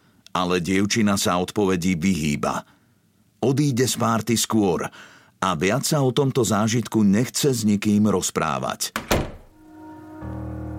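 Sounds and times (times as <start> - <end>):
speech: 0.4 - 2.8, 3.4 - 9.2
door slamming shut: 9.0 - 9.6
steady low humming tone: 9.6 - 10.7.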